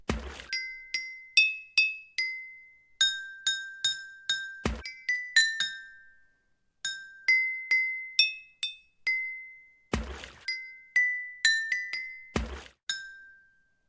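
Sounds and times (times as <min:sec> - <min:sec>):
water-filled glasses struck like a water organ: 0:00.4 - 0:13.8.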